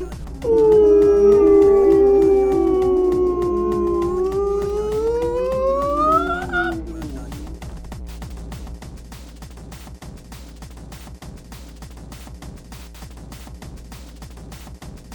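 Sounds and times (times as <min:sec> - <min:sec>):
eerie whale-like moan: 0:00.0 - 0:07.8
faint steady pulsing beat: 0:00.0 - 0:09.7.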